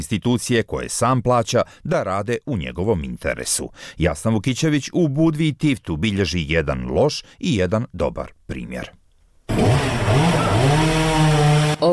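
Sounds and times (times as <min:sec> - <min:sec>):
speech: 0:00.0 - 0:09.0
chainsaw cutting firewood in a residential neighbourhood: 0:09.5 - 0:11.9.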